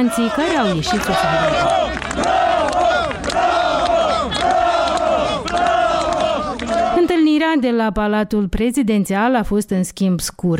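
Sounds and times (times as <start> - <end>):
speech: 0.0 - 3.2, 7.4 - 10.5
large outdoor crowd booing and shouting in the street: 0.0 - 7.1.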